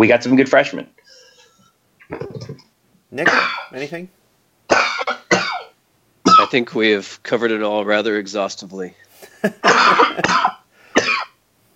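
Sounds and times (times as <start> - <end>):
speech: 0.0 - 1.2, 2.1 - 4.9, 6.5 - 10.5
man coughing harsh throaty bursts: 3.2 - 3.7, 4.7 - 6.5, 9.3 - 11.4.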